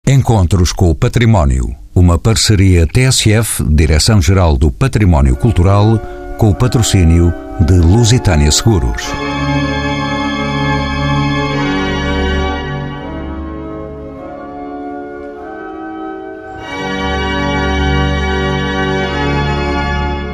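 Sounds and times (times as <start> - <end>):
speech: 0.1 - 9.7
six pipe organs playing chords together in a basilica: 4.6 - 20.3.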